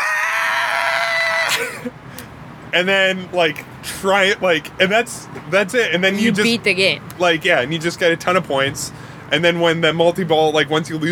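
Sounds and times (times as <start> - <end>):
voice imitating a pinball machine villain character's scream: 0.0 - 1.9
speech: 2.7 - 11.1.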